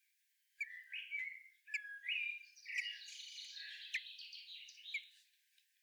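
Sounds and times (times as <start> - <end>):
common blackbird Turdus merula calling: 0.6 - 5.1.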